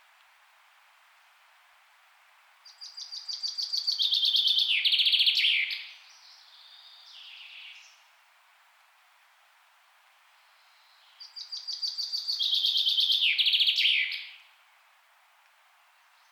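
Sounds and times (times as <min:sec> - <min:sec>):
common chaffinch song: 0:02.6 - 0:08.1, 0:10.5 - 0:14.5.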